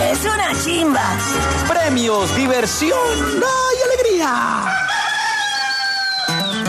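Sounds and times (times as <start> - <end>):
speech: 0.2 - 4.9
rooster crowing: 4.5 - 6.5.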